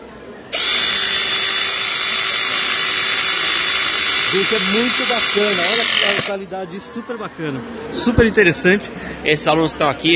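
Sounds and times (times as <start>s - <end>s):
powered cable cutter crimper and sheet-metal punch tool running: 0.5s - 6.3s
speech: 4.3s - 10.1s.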